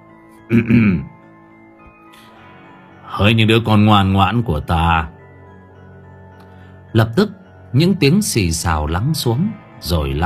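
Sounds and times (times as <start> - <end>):
speech: 0.5 - 1.1, 3.2 - 5.2, 6.9 - 10.2
man clearing his throat: 0.5 - 1.2.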